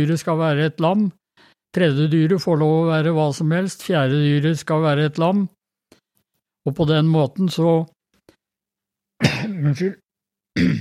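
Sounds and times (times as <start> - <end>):
speech: 0.0 - 5.6, 6.6 - 7.9, 9.2 - 10.0, 10.6 - 10.7
throaty cough or throat-clearing from a speaker: 9.2 - 9.9, 10.6 - 10.7.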